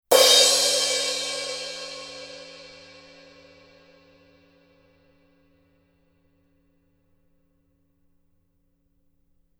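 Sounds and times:
16-inch heavy crash cymbal edge hit: 0.1 - 3.9.

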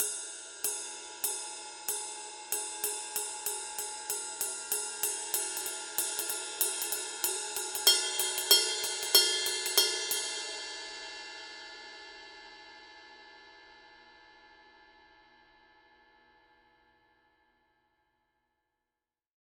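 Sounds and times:
22-inch Paiste 2002 heavy ride cymbal pattern: 0.0 - 13.9.

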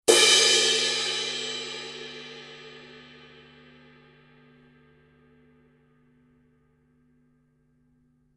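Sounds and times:
Paiste Color Sound 900 purple heavy crash cymbal struck on edge: 0.1 - 4.1.

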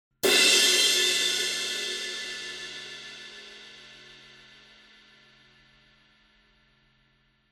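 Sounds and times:
20-inch fast crash cymbal struck on the edge: 0.2 - 5.6.

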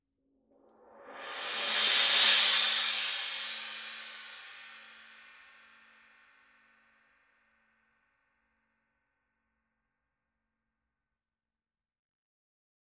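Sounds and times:
18-inch thin crash cymbal roll: 1.0 - 6.1.

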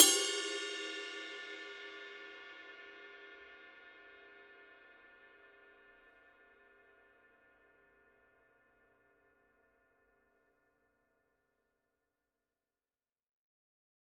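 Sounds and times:
22-inch medium ride cymbal bell: 0.0 - 2.5.

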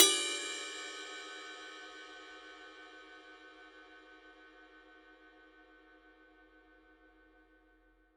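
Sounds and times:
Paiste 2002 ride cymbal bell: 0.0 - 2.2.

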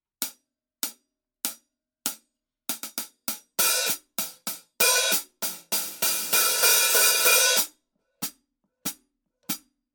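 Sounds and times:
Paiste Formula 602 Classic Sounds 14 heavy hi-hat pattern: 2.8 - 7.7.

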